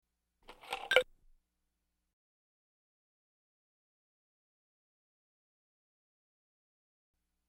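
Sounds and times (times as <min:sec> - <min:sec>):
ice cubes in a glass: 0:00.5 - 0:01.1.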